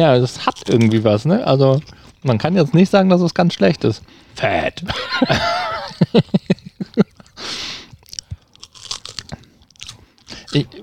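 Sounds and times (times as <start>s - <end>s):
speech: 0.0s - 6.6s, 10.5s - 10.8s
person chewing a thin salty fishy snack: 0.2s - 2.5s, 7.1s - 10.8s
laughter: 4.8s - 7.5s.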